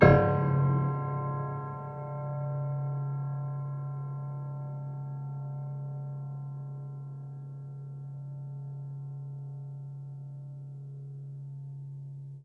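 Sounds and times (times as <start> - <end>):
low piano harmonics with pedal: 0.0 - 12.4.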